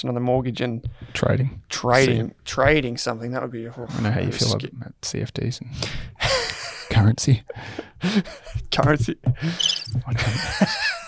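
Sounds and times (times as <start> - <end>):
speech: 0.0 - 11.0
crickets chirping: 9.5 - 10.0.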